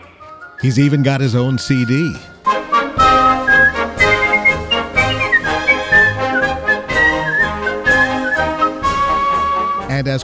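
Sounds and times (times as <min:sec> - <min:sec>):
full instrumental backing music: 0:00.0 - 0:10.2
speech: 0:00.6 - 0:02.3, 0:10.0 - 0:10.2
person whistling a flowing gliding melody: 0:01.9 - 0:09.8.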